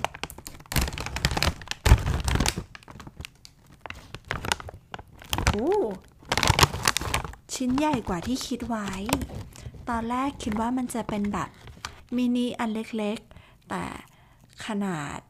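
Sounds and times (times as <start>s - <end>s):
plastic snack package crinkling as it is torn open: 0.0s - 13.0s
person humming: 5.5s - 6.0s
speech: 5.6s - 6.1s, 7.5s - 15.2s.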